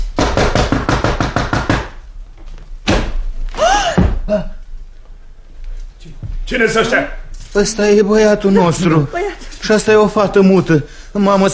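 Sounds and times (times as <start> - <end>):
loud knocking on a door: 0.2 - 2.0
person making short gasping vocal sound: 3.6 - 4.6
speech: 6.5 - 11.5.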